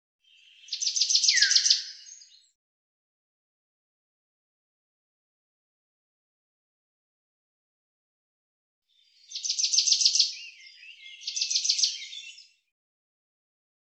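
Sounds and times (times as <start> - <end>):
common chaffinch singing: 0.2 - 2.5, 9.0 - 12.6.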